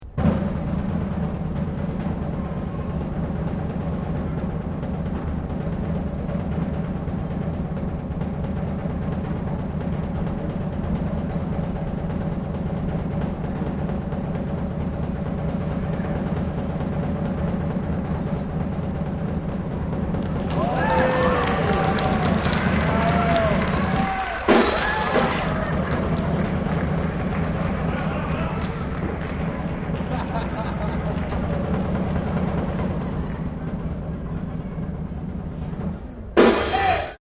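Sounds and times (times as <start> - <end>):
circus drum roll: 0.0 - 37.2
laughter: 20.5 - 34.7.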